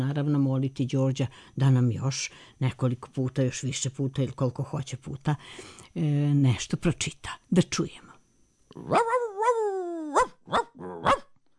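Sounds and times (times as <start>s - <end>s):
speech: 0.0s - 8.1s, 8.7s - 9.3s, 10.5s - 11.2s
dog barking sharply: 8.8s - 11.3s.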